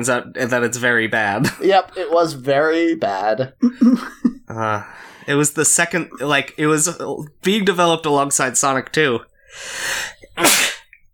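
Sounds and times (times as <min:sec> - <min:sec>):
speech: 0:00.0 - 0:10.7
person sneezing: 0:10.2 - 0:10.9.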